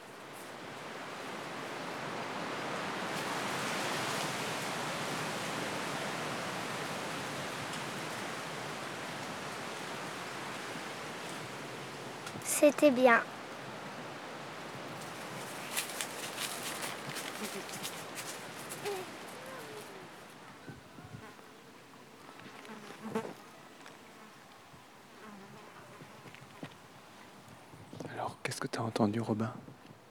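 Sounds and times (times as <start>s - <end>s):
wind rushing through leafy branches: 0.0s - 30.0s
speech: 12.6s - 13.3s, 29.0s - 29.7s
crickets chirping: 15.2s - 28.5s.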